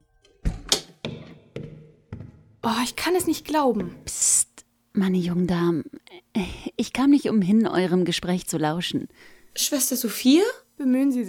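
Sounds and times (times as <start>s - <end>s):
door being closed with soft dull thumps: 0.4s - 2.6s
speech: 2.6s - 11.2s.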